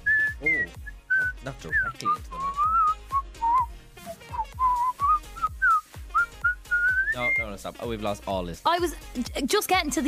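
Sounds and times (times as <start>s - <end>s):
person whistling a bright wavering melody: 0.0s - 7.5s
speech: 1.4s - 2.7s, 7.2s - 10.0s.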